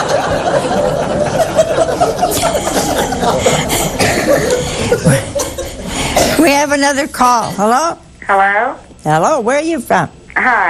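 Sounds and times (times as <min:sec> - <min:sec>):
people chuckling: 0:00.0 - 0:06.1
crowd of people coughing on cue in a large room: 0:00.0 - 0:06.6
speech: 0:06.8 - 0:10.6.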